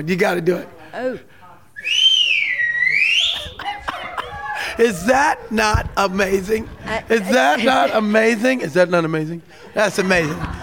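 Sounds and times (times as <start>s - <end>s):
speech: 0.0s - 2.0s, 4.8s - 10.6s
woman's loud whistle: 1.8s - 3.6s
laughter: 3.0s - 10.6s.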